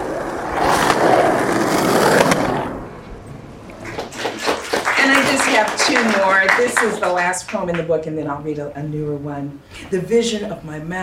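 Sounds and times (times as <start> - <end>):
skateboard wheels rolling and grinding on boardwalk: 0.0 - 6.4
speech: 5.6 - 11.0.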